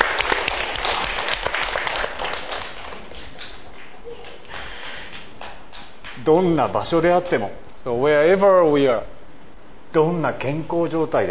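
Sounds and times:
audience applauding with many hands clapping: 0:00.0 - 0:06.5
speech: 0:06.3 - 0:09.1, 0:09.9 - 0:11.3.

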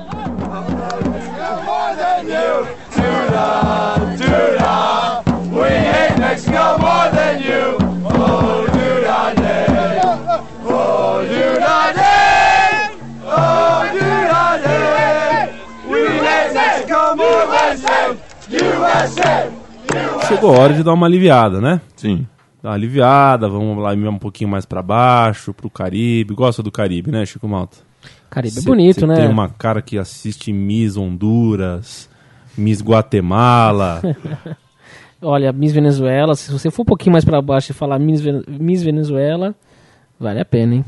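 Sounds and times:
large crowd of football supporters chanting against Mexico: 0:00.0 - 0:20.8
speech: 0:20.4 - 0:34.6, 0:35.2 - 0:40.8
laughter: 0:33.8 - 0:34.7.

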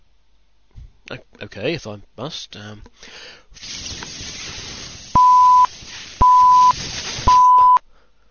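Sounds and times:
soft hiss: 0:00.0 - 0:08.3
speech: 0:01.1 - 0:04.0
breathalyser electronic beeps: 0:05.2 - 0:07.8.

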